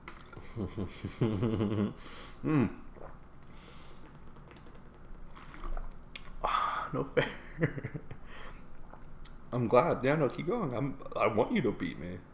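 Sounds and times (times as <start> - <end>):
person drinking water from a plastic bottle: 0.0 - 0.7, 2.3 - 7.0
speech: 0.6 - 2.8, 6.9 - 8.5, 9.5 - 12.3.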